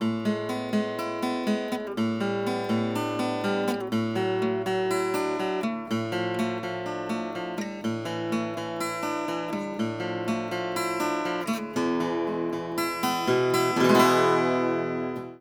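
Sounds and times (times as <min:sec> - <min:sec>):
acoustic guitar arpeggio: 0:00.0 - 0:15.3.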